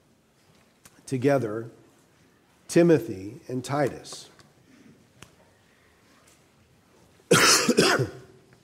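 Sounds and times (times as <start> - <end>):
speech: 1.1 - 1.8, 2.7 - 4.3
harsh coughs: 7.3 - 8.3.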